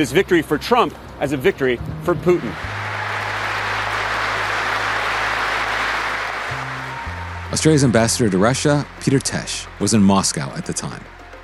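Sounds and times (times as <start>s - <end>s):
speech: 0.0s - 2.8s, 7.5s - 11.2s
parliament deputies applauding: 2.3s - 11.4s.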